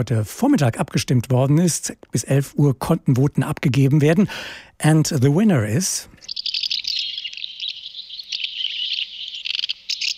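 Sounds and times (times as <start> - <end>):
speech: 0.0 - 6.2
house martins twittering: 6.1 - 10.1.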